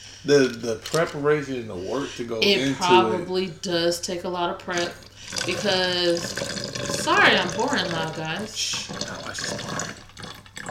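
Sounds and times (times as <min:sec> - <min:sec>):
speech: 0:00.2 - 0:09.8
tequila pouring into a cup: 0:04.8 - 0:10.7.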